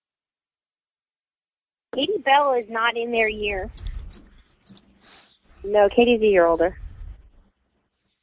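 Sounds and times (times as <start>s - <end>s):
speech: 2.0s - 3.8s, 5.6s - 6.8s
keyboard typing: 2.0s - 5.0s.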